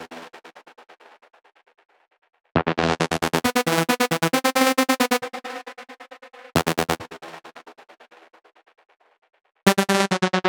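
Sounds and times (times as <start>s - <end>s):
modern techno synth lead at 135 BPM: 2.6s - 5.1s, 9.7s - 10.4s.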